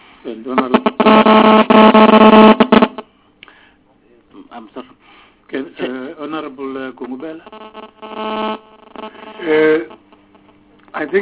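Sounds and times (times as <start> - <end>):
speech: 0.2 - 2.5, 6.4 - 8.6, 9.4 - 9.9
phone ringing with a bright electronic melodic tone in a legislative chamber: 0.6 - 3.0, 7.5 - 10.6.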